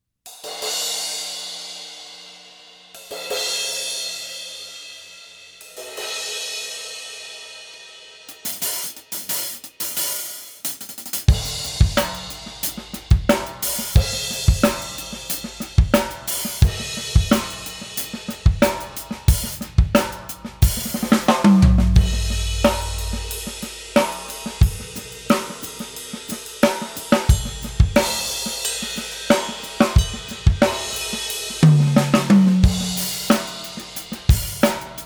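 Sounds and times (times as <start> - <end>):
crash cymbals: 0.4 - 35.0
hi-hats: 8.3 - 31.9, 32.6 - 35.0.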